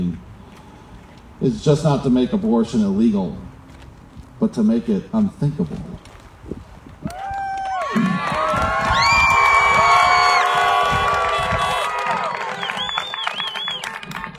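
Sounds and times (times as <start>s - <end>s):
speech: 0.0s - 0.3s, 1.4s - 3.5s, 4.4s - 6.1s
outdoor street protest crowd shouting and cheering: 7.1s - 14.3s
car horns honking: 9.1s - 12.8s.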